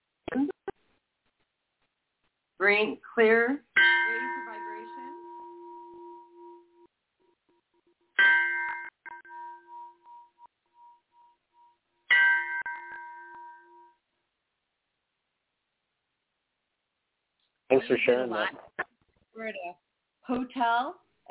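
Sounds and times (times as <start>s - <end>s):
speech: 2.6s - 3.6s, 17.9s - 18.7s, 19.4s - 21.3s
small Tibetan bell struck and ringing: 3.8s - 6.9s, 8.2s - 14.0s.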